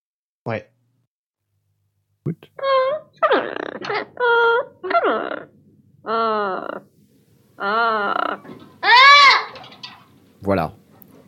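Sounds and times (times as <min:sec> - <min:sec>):
speech: 0:00.4 - 0:00.7, 0:02.3 - 0:06.9, 0:07.6 - 0:08.6, 0:10.4 - 0:10.8
South American parrot squawking: 0:02.6 - 0:06.9, 0:07.6 - 0:10.0.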